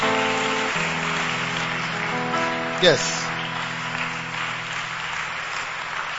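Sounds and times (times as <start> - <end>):
crowd applauding: 0.0 - 6.1
speech: 2.8 - 3.3.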